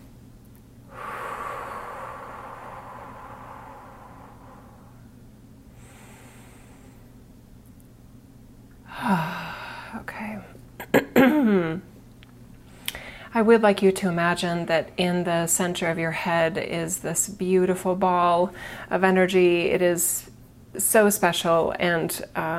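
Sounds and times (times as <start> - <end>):
breathy vocal sounds: 0.9 - 5.0, 8.9 - 10.0
deep breathing during a guided meditation: 0.9 - 7.2, 8.9 - 10.0, 12.7 - 13.3, 18.5 - 18.9
speech: 13.4 - 22.5.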